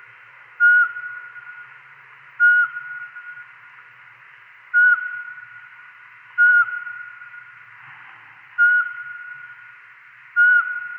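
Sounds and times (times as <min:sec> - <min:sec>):
Eurasian pygmy owl giving clear mellow whistled notes: 0:00.6 - 0:01.6, 0:02.4 - 0:03.4, 0:04.8 - 0:05.5, 0:06.4 - 0:07.4, 0:08.6 - 0:09.5, 0:10.4 - 0:10.9.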